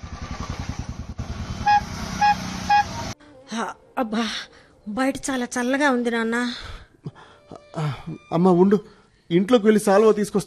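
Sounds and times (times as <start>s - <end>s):
auto rickshaw small engine puttering: 0.0s - 3.1s
auto rickshaw horn toots: 1.5s - 3.1s
speech: 3.6s - 7.2s, 7.8s - 10.4s.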